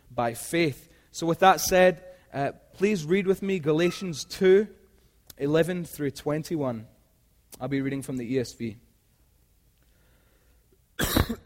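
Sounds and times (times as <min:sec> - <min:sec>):
speech: 0:00.2 - 0:04.8, 0:05.4 - 0:06.9, 0:07.5 - 0:08.8
person coughing harshly: 0:11.0 - 0:11.4.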